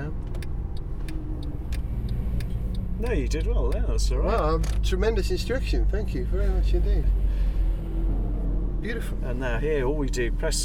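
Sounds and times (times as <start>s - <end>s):
light ticking: 0.0s - 5.7s
Mercedes SLS AMG sports car engine driving at Goodwood: 0.0s - 10.6s
road rumble of sports car: 0.0s - 10.6s
speech: 3.0s - 7.2s, 8.8s - 10.6s.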